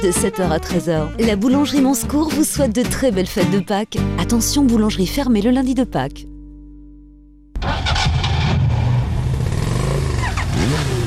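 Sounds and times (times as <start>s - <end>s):
speech: 0.0s - 6.3s
engine starting and revving: 7.6s - 11.0s.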